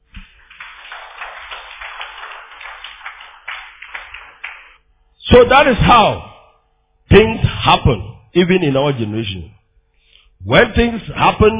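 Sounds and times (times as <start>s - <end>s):
audience clapping: 0.0s - 4.8s
speech: 5.3s - 6.3s, 7.1s - 9.6s, 10.4s - 11.5s.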